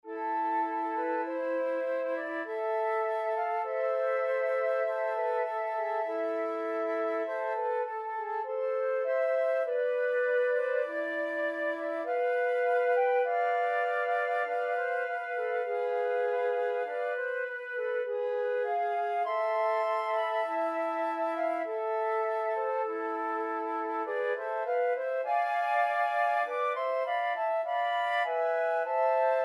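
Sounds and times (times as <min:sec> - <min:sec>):
flute trio playing: 0:00.1 - 0:29.4.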